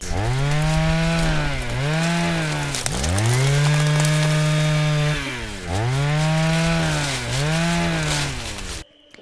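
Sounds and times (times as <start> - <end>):
leaf blower small engine revving: 0.0 - 8.8.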